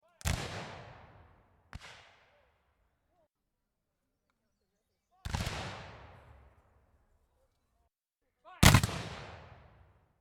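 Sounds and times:
rifle musket volley firing: 0.2s - 2.6s, 5.2s - 6.6s, 8.6s - 9.9s.

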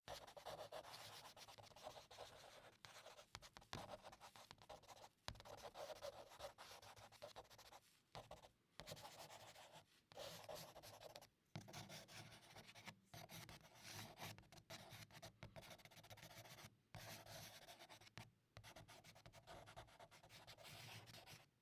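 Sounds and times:
charcoal drawing on paper: 0.1s - 21.4s.

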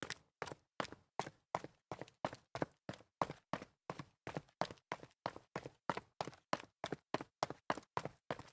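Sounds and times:
sneakers jogging on concrete stairs: 0.0s - 8.5s.

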